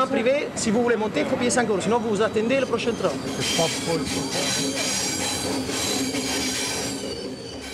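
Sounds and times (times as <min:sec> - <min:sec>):
train rolling along rails on the Mediterranean coast to Marseille: 0:00.0 - 0:07.7
loud sustained metallic squeal of train wheels: 0:01.8 - 0:07.7.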